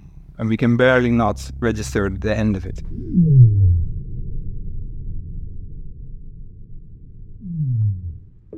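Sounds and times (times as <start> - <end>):
deep rumbling very low-frequency whale calls: 0.0 - 4.1, 7.4 - 8.5
speech: 0.4 - 3.6.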